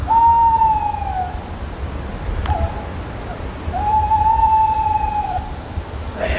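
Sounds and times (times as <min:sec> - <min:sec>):
bird whistled calls: 0:00.0 - 0:01.4, 0:03.7 - 0:05.5.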